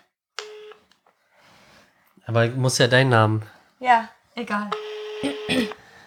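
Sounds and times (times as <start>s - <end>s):
electronic telephone tone through a speakerphone: 0.4s - 0.8s, 4.7s - 5.8s
speech: 2.3s - 5.8s.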